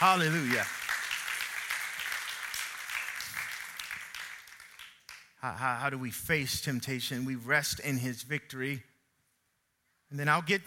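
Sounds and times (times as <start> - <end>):
speech: 0.0 - 0.8, 5.4 - 8.9, 10.1 - 10.6
crowd applauding: 0.0 - 5.3.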